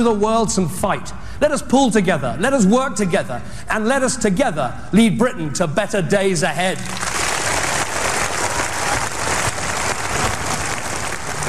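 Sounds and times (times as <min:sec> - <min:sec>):
speech: 0:00.0 - 0:07.1
large crowd applauding after political speech: 0:06.8 - 0:11.4.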